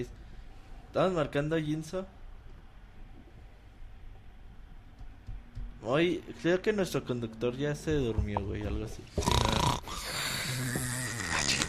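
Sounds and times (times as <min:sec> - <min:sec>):
speech: 0:00.0 - 0:00.2, 0:00.9 - 0:02.2, 0:05.8 - 0:09.6
loud rough snoring: 0:09.2 - 0:11.6.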